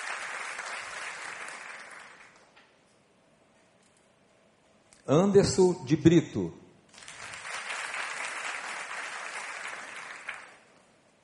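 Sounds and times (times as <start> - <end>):
audience applause: 0.0 - 2.6, 6.9 - 10.9
speech: 5.1 - 6.6.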